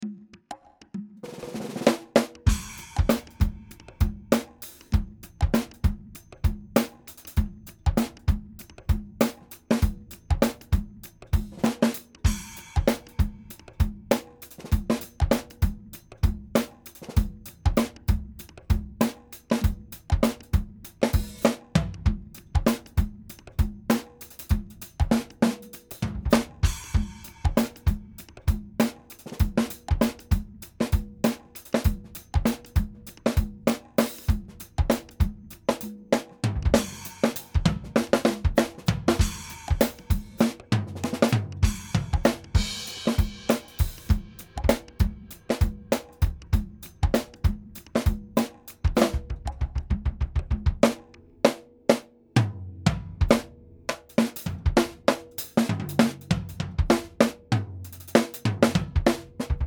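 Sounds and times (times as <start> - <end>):
drum loop: 1.2 - 51.1, 52.9 - 59.6.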